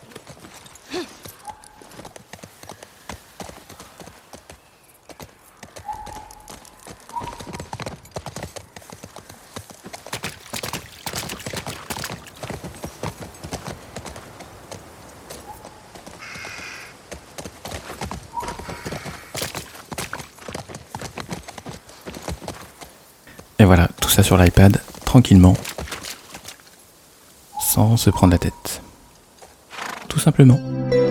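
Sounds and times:
galloping horse hooves clip-clopping: 0:00.0 - 0:26.8, 0:29.2 - 0:30.1
faint horse whinnies: 0:16.2 - 0:16.9, 0:18.4 - 0:19.4, 0:29.7 - 0:30.1
speech: 0:23.6 - 0:25.7, 0:27.8 - 0:28.8, 0:30.2 - 0:31.0.

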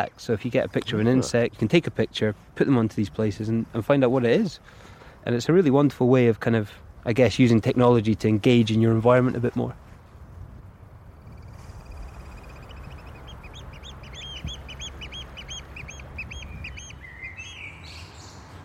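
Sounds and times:
speech: 0:00.0 - 0:09.8
steady low rumble of wind or surf: 0:00.0 - 0:17.0
oystercatchers giving shrill piping calls: 0:11.3 - 0:18.5.

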